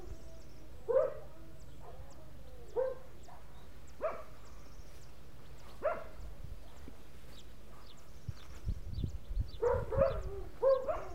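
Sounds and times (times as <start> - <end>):
dog barking in the countryside: 0.9 - 4.4, 5.7 - 6.9, 9.6 - 11.1.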